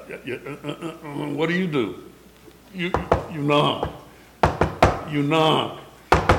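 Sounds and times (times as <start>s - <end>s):
speech: 0.1s - 2.1s, 2.7s - 4.0s, 5.1s - 5.8s
sharp knocks on a door: 2.9s - 5.1s, 6.1s - 6.3s.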